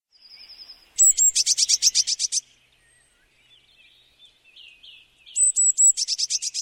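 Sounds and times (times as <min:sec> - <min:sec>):
Eurasian blue tit soft twittering: 0:00.1 - 0:06.5
Eurasian blue tit singing buzzy trill: 0:00.4 - 0:02.4, 0:05.3 - 0:06.5.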